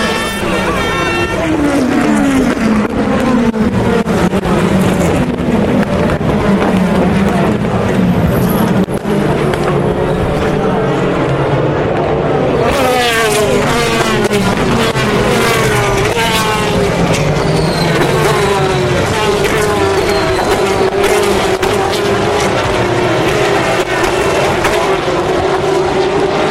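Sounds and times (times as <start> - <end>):
race cars passing at full racing speed at Le Mans: 0.0 - 26.4.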